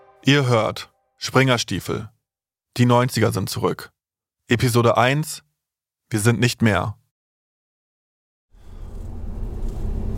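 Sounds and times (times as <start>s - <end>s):
speech: 0.2s - 2.2s, 2.8s - 5.5s, 6.1s - 7.0s
car driving on a road into the town of Zittau in Saxony: 8.6s - 10.1s.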